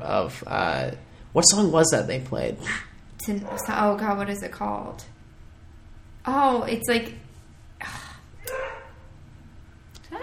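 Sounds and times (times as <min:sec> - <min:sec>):
speech: 0:00.0 - 0:05.2, 0:06.2 - 0:07.2, 0:07.8 - 0:08.0
low hum: 0:00.0 - 0:10.2
faint dog barking: 0:03.4 - 0:04.2, 0:08.4 - 0:09.1.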